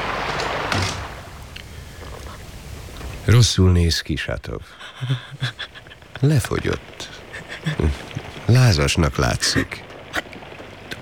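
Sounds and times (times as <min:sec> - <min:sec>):
steady hiss: 0:00.0 - 0:11.0
door thudding shut: 0:00.1 - 0:01.4
speech: 0:03.3 - 0:09.9
laughter: 0:04.7 - 0:08.6.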